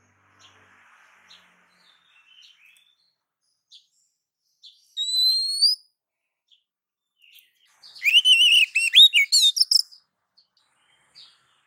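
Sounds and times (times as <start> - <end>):
female Oriental magpie-robin whistling phrase calling the male: 5.0 - 5.8, 8.0 - 10.0.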